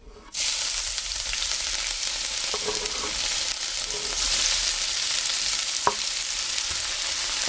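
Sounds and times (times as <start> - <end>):
chopped leek stalks sizzling in hot olive oil in a pan on the stove: 0.3 - 7.4
soft stirring scrapes in a pan: 2.5 - 4.7.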